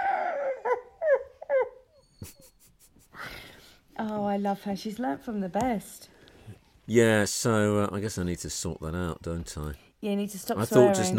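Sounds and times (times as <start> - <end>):
dog howling: 0.0 - 1.8
speech: 4.0 - 6.1, 6.9 - 11.1.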